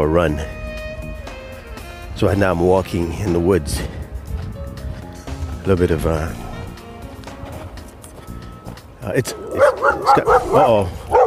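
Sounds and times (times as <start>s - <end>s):
speech: 0.0s - 0.6s, 2.2s - 4.0s, 5.6s - 6.4s, 9.0s - 11.2s
fenced-in dog barking in the woods: 9.3s - 11.2s.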